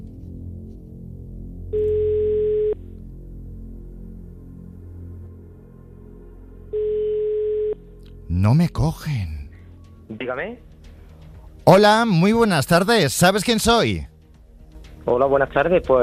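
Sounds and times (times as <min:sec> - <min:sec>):
telephone ringback tone on an outgoing call: 0:01.8 - 0:02.8, 0:06.8 - 0:07.8
speech: 0:08.4 - 0:09.4, 0:10.1 - 0:10.7, 0:11.7 - 0:14.1, 0:15.1 - 0:16.0.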